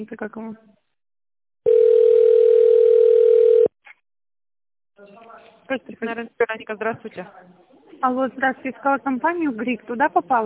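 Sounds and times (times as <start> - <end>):
speech: 0.0 - 0.9, 5.0 - 10.4
telephone line tone while waiting for an operator after tone dialing: 1.6 - 3.7.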